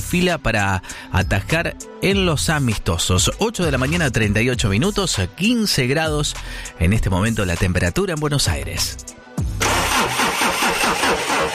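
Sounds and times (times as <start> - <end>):
speech: 0.1 - 9.2
engine starting sound effect in a radio jingle: 9.5 - 11.5.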